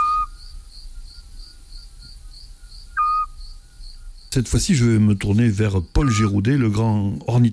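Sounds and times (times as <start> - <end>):
Eurasian scops owl whistled call notes: 0.0 - 0.4, 2.9 - 3.4, 6.0 - 6.4
pulsing chorus of crickets at night: 0.0 - 7.5
speech: 4.4 - 7.5.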